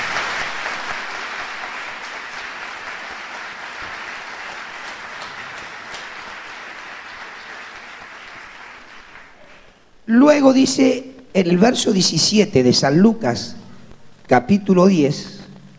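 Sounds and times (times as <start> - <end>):
audience applauding: 0.0 - 9.8
speech: 10.1 - 13.6, 14.3 - 15.4.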